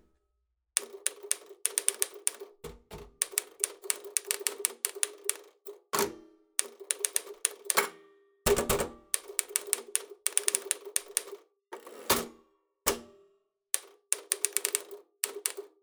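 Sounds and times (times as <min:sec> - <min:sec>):
Remington typewriter typing: 0:00.8 - 0:02.5, 0:03.1 - 0:05.6, 0:06.6 - 0:07.9, 0:08.5 - 0:11.4, 0:13.8 - 0:15.7.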